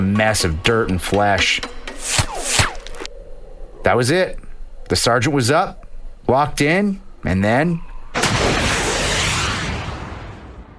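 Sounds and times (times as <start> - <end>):
speech: 0.0 - 2.3, 3.9 - 7.9
rocket launching with a hiss during a firefight: 1.9 - 3.1, 8.2 - 10.7.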